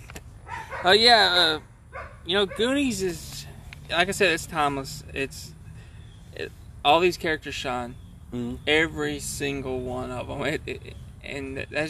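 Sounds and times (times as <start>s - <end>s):
dog barking: 0.5s - 1.0s, 1.9s - 2.8s
speech: 0.8s - 3.3s, 3.9s - 5.6s, 6.3s - 11.8s.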